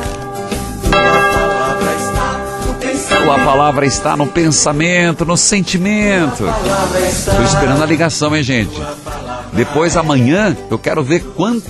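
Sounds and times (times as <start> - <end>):
church bell rung by the sacristan: 0.0 - 6.7
speech: 3.3 - 11.6.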